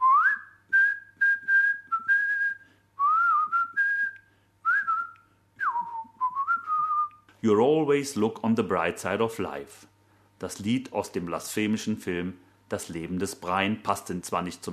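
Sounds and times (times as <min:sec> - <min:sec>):
person whistling a cheerful bouncy melody: 0:00.0 - 0:07.2
speech: 0:07.4 - 0:14.7.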